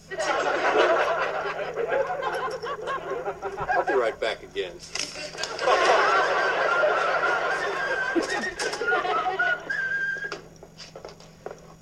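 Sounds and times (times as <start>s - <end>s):
chatter and laughter: 0.0s - 10.1s
speech: 4.6s - 5.5s
person whistling a wavering tune while walking: 8.0s - 10.4s.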